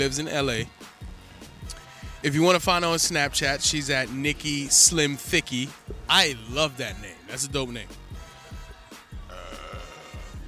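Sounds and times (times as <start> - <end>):
speech: 0.0 - 0.9, 2.2 - 8.0
loud drawn-out throaty burp: 9.3 - 10.4.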